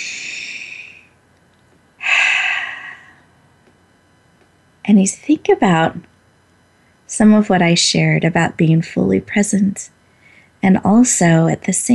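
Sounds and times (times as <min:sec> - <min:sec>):
long airy breaths during a guided breathing exercise: 0:00.0 - 0:01.1, 0:02.0 - 0:03.3, 0:10.0 - 0:10.6
speech: 0:04.9 - 0:06.1, 0:07.2 - 0:10.0, 0:10.6 - 0:11.9.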